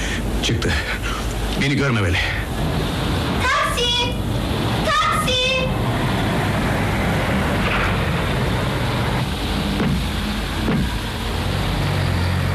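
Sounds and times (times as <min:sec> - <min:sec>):
car engine rumbling: 0:00.0 - 0:12.5
speech: 0:00.5 - 0:01.0, 0:01.6 - 0:03.2
brief mechanical clicks and thumps: 0:09.2 - 0:11.0.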